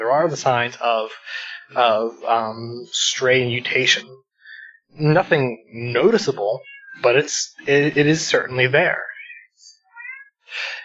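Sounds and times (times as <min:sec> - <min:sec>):
speech: 0:00.0 - 0:04.2, 0:04.9 - 0:09.1
cat meowing: 0:06.6 - 0:07.3, 0:09.0 - 0:10.4.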